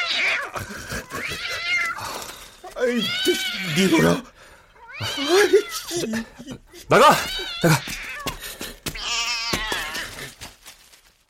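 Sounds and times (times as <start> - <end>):
cat yowling: 0.0 - 4.2, 4.8 - 6.0, 7.0 - 8.3, 9.0 - 10.3
laughter: 0.6 - 1.7, 5.0 - 8.7
speech: 2.8 - 4.3, 5.0 - 8.0.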